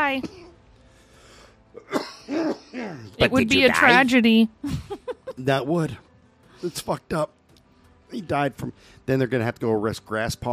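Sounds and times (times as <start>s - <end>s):
speech: 0.1s - 0.4s, 1.8s - 7.4s, 8.1s - 10.5s
harsh cough with a choking catch in the throat: 0.1s - 0.6s, 1.8s - 3.1s
quiet breathing: 0.8s - 1.7s, 8.7s - 9.1s.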